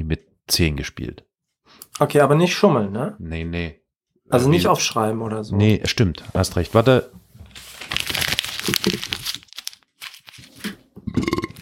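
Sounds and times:
speech: 0.1 - 7.2
paper being crumpled up: 6.5 - 10.8.

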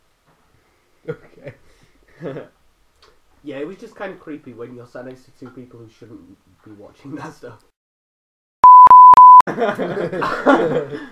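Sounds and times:
speech: 1.0 - 1.6, 2.2 - 2.6, 3.4 - 7.7, 9.5 - 11.1
censor bleep tone: 8.6 - 9.4
people laughing: 9.5 - 11.1.

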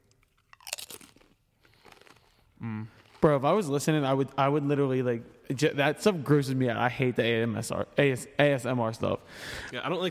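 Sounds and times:
chewing crunches of a chili pepper: 0.0 - 3.3
crunchy bite into a Pineapple Reaper chili pepper: 0.5 - 2.4
speech: 2.6 - 10.0.

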